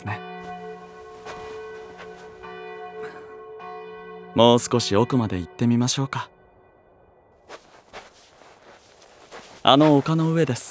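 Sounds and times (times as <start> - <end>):
church bell tolling the hour of twelve o'clock: 0.0 - 7.0
speech: 4.4 - 6.4, 9.6 - 10.6.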